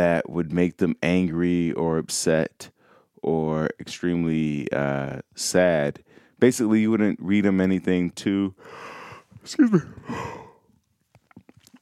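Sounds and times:
speech: 0.0 - 10.4
long breathy yawn into a microphone: 9.7 - 10.6.

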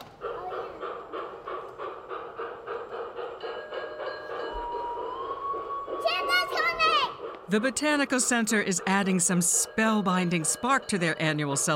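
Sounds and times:
small G-scale model train clattering with a faint mechanical hum: 0.0 - 11.7
speech: 7.5 - 11.7.

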